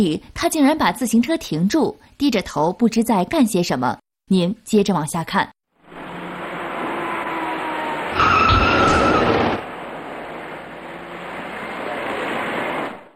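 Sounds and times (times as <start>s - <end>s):
speech: 0.0s - 5.6s
constant road and traffic noise on a multi-lane road: 5.8s - 13.1s
fast silver passenger car tires screeching while skidding on a multi-lane road: 5.9s - 13.1s.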